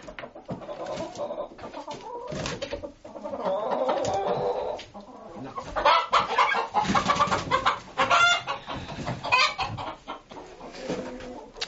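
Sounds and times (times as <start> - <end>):
bronze turkeys clucking and calling: 0.0 - 11.6.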